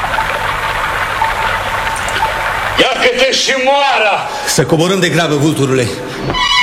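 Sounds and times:
mountain stream flowing over rocks: 0.0s - 3.3s
speech: 2.8s - 6.5s.

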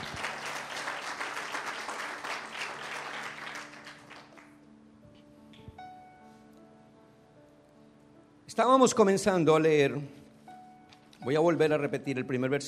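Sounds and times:
audience applause at a church service: 0.0s - 4.6s
speech: 8.5s - 10.2s, 11.2s - 12.6s.

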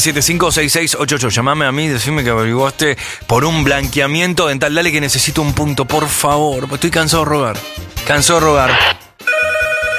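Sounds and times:
speech: 0.0s - 9.0s
telephone ringing with bright electronic tones: 8.6s - 9.9s.

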